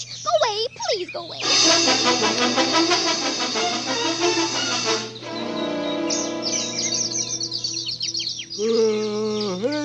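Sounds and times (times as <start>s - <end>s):
chorus of many agitated birds chirping and calling: 0.0s - 1.6s, 4.1s - 9.8s
birds squawking: 0.0s - 9.8s
speech: 0.5s - 4.6s.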